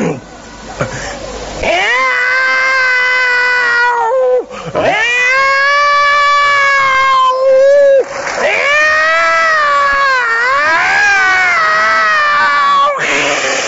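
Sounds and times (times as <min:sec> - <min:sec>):
person imitating a yowling cat: 0:01.6 - 0:13.6.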